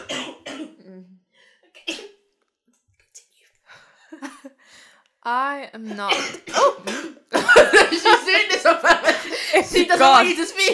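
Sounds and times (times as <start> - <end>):
sharp coughs: 0.0 - 0.8, 1.8 - 2.2, 6.0 - 9.4
speech: 5.2 - 10.7
laughter: 7.4 - 10.7.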